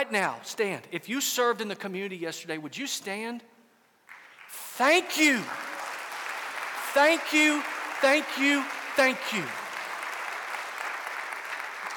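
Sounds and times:
speech: 0:00.0 - 0:03.6, 0:04.8 - 0:05.8, 0:06.9 - 0:09.6
audience giving a golf clap: 0:04.1 - 0:11.9.

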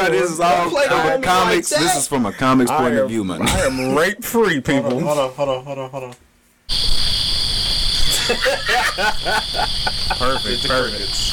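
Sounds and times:
speech: 0:00.0 - 0:06.9, 0:08.3 - 0:11.3
laughter: 0:04.8 - 0:06.2, 0:08.0 - 0:11.1
shrill chorus of crickets chirping: 0:06.7 - 0:11.3.

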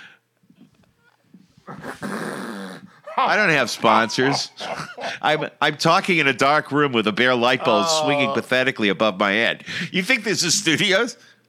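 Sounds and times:
dog growling: 0:01.6 - 0:05.4
laughter: 0:03.1 - 0:05.6, 0:07.6 - 0:08.5
speech: 0:03.2 - 0:11.3.

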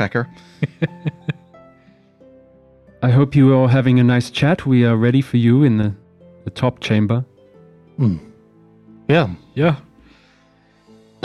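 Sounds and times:
speech: 0:00.0 - 0:01.3, 0:03.0 - 0:07.3, 0:08.0 - 0:08.3, 0:09.1 - 0:09.9
laughter: 0:00.6 - 0:01.5
person sneezing: 0:08.0 - 0:08.3.

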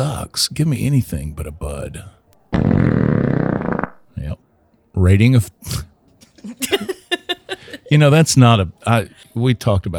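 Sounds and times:
speech: 0:00.0 - 0:03.4, 0:05.0 - 0:05.9, 0:07.9 - 0:09.9
fart: 0:02.5 - 0:04.1
laughter: 0:06.2 - 0:08.0.

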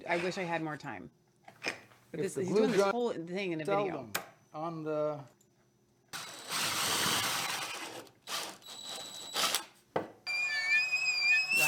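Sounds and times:
speech: 0:00.1 - 0:01.2, 0:02.1 - 0:05.4
power drill boring through wood with a wooden drilling jig: 0:06.2 - 0:09.6, 0:10.3 - 0:11.6.

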